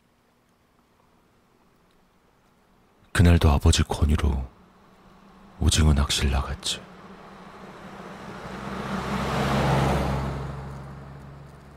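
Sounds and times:
speech: 3.2 - 4.6, 5.6 - 6.9
small truck driving on a country road: 4.5 - 11.7.

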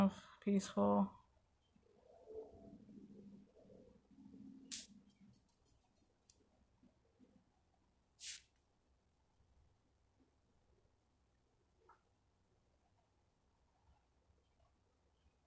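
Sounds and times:
speech: 0.0 - 1.2
birds cooing softly: 1.7 - 4.5.

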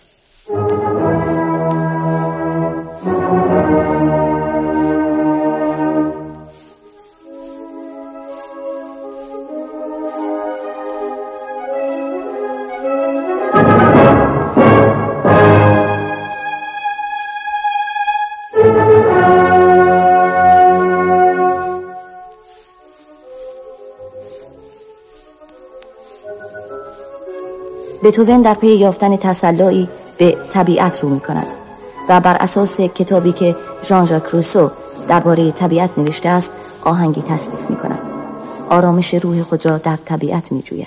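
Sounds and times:
quieter sustained strings: 0.2 - 40.2
full orchestra playing loud forceful chords: 0.5 - 16.5, 18.5 - 25.2, 33.1 - 39.5
speech: 28.1 - 37.9, 38.7 - 40.8.

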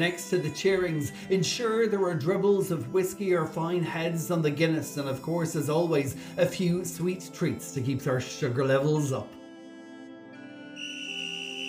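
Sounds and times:
speech: 0.0 - 9.4
whistle blown to start a race: 10.4 - 11.6.

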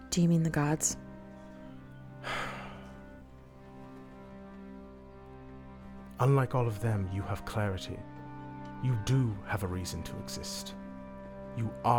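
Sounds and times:
speech: 0.2 - 1.1, 6.2 - 8.2, 8.8 - 10.8, 11.6 - 11.9
person exhaling cigarette smoke after a long drag: 2.2 - 2.9.

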